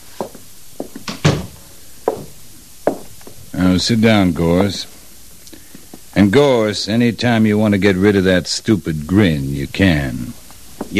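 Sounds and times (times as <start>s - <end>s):
wooden door pushed shut with a solid thump: 1.0s - 1.6s
speech: 3.7s - 5.0s, 6.2s - 10.9s.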